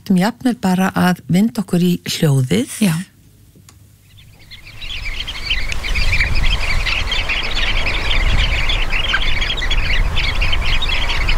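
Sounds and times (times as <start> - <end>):
speech: 0.1 - 3.1
large flock of sanderlings (Calidris alba) chirping: 3.9 - 11.3.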